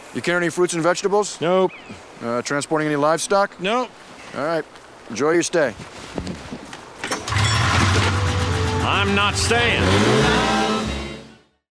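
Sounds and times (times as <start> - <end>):
speech: 0.1 - 6.3, 8.9 - 10.5
car engine revving at a border crossing: 7.2 - 11.3.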